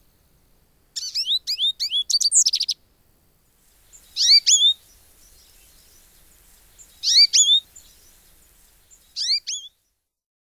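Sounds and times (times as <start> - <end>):
goldfinch calls with bright quick bending notes: 1.0 - 2.8, 3.9 - 9.8.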